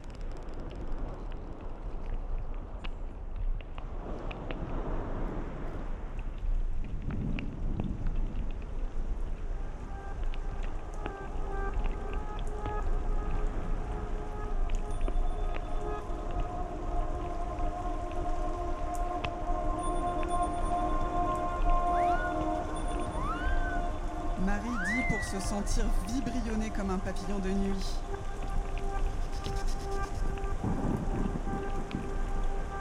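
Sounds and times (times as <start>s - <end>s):
steady rain pattering on a surface: 0.0s - 32.7s
faint sustained tones: 10.8s - 32.7s
speech: 25.6s - 28.0s.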